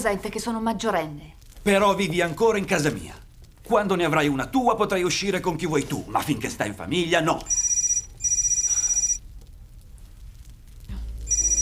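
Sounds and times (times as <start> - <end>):
speech: 0.0 - 7.6
telephone bell ringing: 7.5 - 9.2, 11.3 - 11.6.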